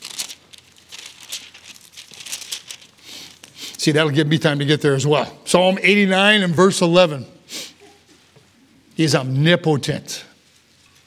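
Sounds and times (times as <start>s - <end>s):
many thin Bible pages rustling and flipping in an audience: 0.0s - 3.8s
speech: 3.8s - 7.4s, 9.0s - 10.2s.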